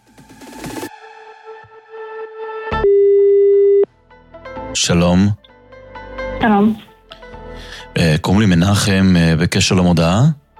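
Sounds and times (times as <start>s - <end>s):
telephone ringback tone: 2.8s - 3.9s
speech: 4.8s - 5.4s, 6.4s - 6.9s, 7.9s - 10.4s.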